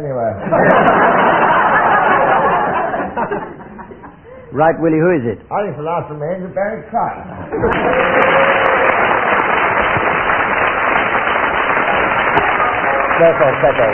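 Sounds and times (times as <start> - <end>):
laughter: 0.4 - 4.5, 7.3 - 8.5
speech: 4.5 - 8.4, 13.2 - 13.9
large audience applauding loudly: 7.5 - 13.9.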